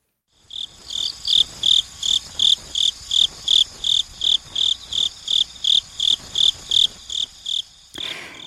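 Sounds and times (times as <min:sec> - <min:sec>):
cricket chirping: 0:00.3 - 0:08.4.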